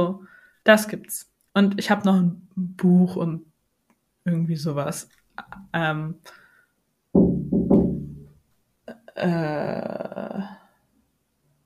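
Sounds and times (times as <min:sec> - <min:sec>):
speech: 0:00.0 - 0:03.5, 0:04.2 - 0:06.4, 0:09.2 - 0:10.6
knocking on a window pane: 0:07.2 - 0:08.3.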